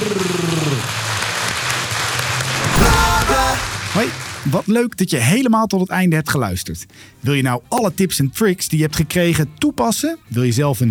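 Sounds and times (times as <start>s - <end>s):
crowd at an opening event applauding: 0.0s - 4.5s
speech: 4.0s - 10.9s.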